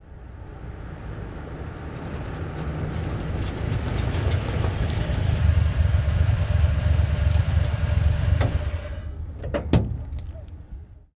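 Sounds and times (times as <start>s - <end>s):
1947 Ford V8 truck engine at medium idle: 2.5s - 11.0s.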